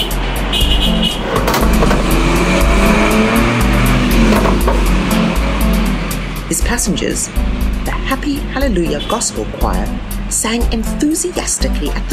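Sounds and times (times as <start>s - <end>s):
minibus taxi double horn toot: 0.0s - 4.4s, 8.8s - 9.4s
minibus taxi engine roaring while zooming past: 0.0s - 12.1s
traffic rumble: 0.0s - 12.1s
speech: 6.8s - 12.1s.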